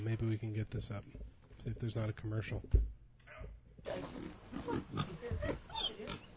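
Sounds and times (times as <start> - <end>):
speech: 0.0 - 6.2
pigs grunting and snorting in a played video: 3.9 - 6.3.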